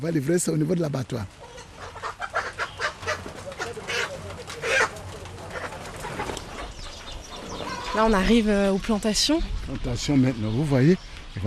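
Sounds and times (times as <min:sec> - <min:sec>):
speech: 0:00.0 - 0:01.6, 0:08.0 - 0:11.4
crowd of hens clucking and murmuring: 0:01.3 - 0:08.7.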